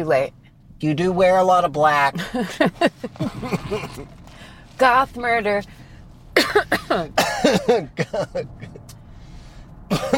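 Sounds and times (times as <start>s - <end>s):
speech: 0.0s - 4.2s, 4.8s - 5.8s, 6.4s - 8.7s, 9.9s - 10.1s
uncontrollable harsh raspy coughing: 3.2s - 4.2s, 6.4s - 8.8s, 9.9s - 10.1s.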